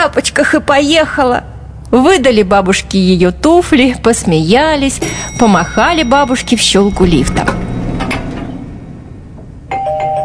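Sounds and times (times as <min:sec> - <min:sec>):
speech: 0:00.1 - 0:07.7
apartment doorbell ringing: 0:04.9 - 0:10.2
apartment doorbell chime: 0:05.0 - 0:09.1, 0:09.7 - 0:10.2.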